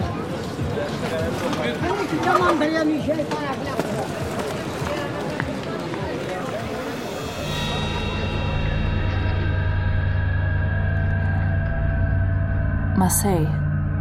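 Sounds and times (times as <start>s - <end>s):
busy street crowd with many overlapping voices calling and chattering: 0.0s - 11.8s
speech: 0.9s - 4.2s, 13.0s - 13.6s
steady low droning hum: 6.9s - 13.9s.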